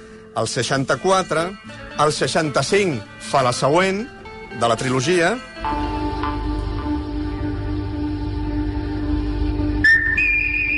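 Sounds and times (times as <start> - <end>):
speech: 0.4 - 5.9
steady low musical drone: 3.2 - 10.7
clear bright whistled film score melody: 9.8 - 10.7.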